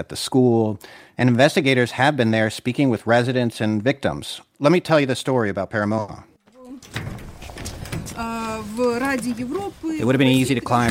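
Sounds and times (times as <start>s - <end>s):
speech: 0.0s - 6.3s, 8.6s - 10.8s
hinges of a heavy church door creaking: 6.5s - 9.8s, 10.5s - 10.8s
latch rattle and clunk of a heavy church door: 6.8s - 8.2s.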